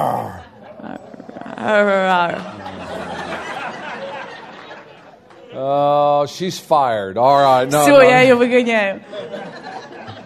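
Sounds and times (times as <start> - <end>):
person imitating a roar with a strained voiced growl: 0.0 - 0.5
laughter: 0.0 - 6.0, 7.7 - 10.2
speech: 1.6 - 2.6, 5.6 - 9.6.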